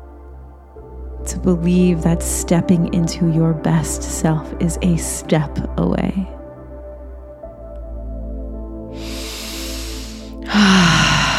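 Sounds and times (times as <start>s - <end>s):
steady low tonal background: 0.0s - 11.3s
speech: 1.2s - 6.4s
slow exhale during a guided breathing exercise: 9.0s - 11.3s.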